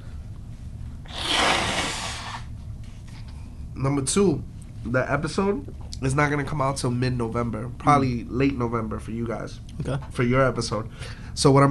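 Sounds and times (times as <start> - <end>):
nose blowing: 1.0 - 2.5
speech: 3.8 - 11.6.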